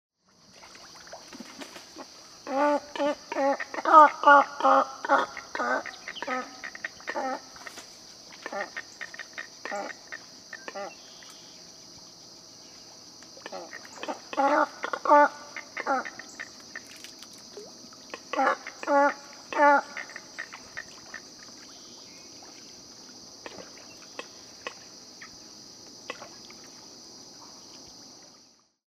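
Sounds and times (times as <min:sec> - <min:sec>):
Double-crested Cormorant Phalacrocorax auritus: 0:02.4 - 0:07.7, 0:08.4 - 0:11.1, 0:13.4 - 0:16.9, 0:18.1 - 0:21.2.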